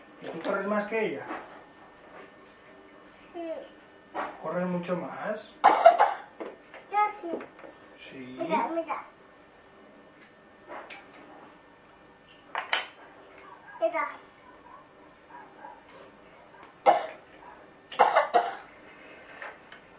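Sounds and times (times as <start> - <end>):
speech: 0.5 - 1.5, 3.4 - 6.0, 7.1 - 9.2, 13.9 - 14.2
child coughing: 5.6 - 6.3, 16.8 - 17.2, 18.0 - 18.7.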